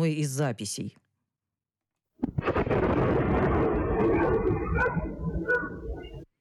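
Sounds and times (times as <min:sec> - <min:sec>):
speech: 0:00.0 - 0:01.0
explosion-like boom in the sky: 0:02.2 - 0:06.3.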